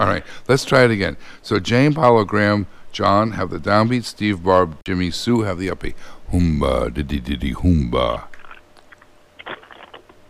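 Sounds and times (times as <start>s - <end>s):
speech: 0.0s - 8.3s
people crunching crisp food: 8.3s - 10.2s.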